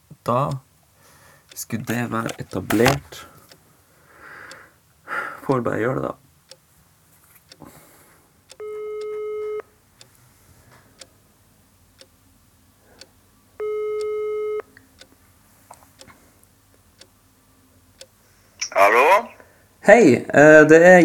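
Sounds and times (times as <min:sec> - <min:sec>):
speech: 0:00.2 - 0:00.6, 0:01.6 - 0:03.3, 0:05.5 - 0:06.2, 0:19.9 - 0:21.0
electronic telephone ringback tone: 0:08.6 - 0:09.6, 0:13.6 - 0:14.6.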